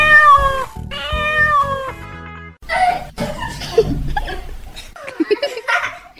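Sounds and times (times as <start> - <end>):
cat meowing with long drawn-out cries: 0.0 - 2.0
laughter: 3.0 - 6.1.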